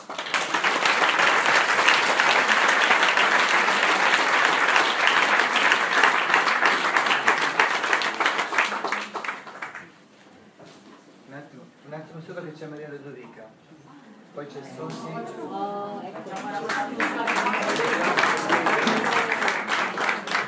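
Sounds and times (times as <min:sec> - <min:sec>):
audience applause: 0:00.0 - 0:09.9, 0:16.1 - 0:20.4.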